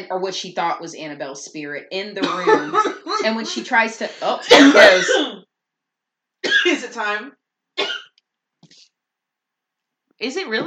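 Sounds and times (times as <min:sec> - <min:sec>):
speech: 0:00.0 - 0:05.4, 0:06.7 - 0:08.0, 0:10.2 - 0:10.6
person coughing away from the microphone: 0:02.2 - 0:03.4, 0:04.2 - 0:05.5, 0:06.4 - 0:06.9, 0:07.8 - 0:08.1.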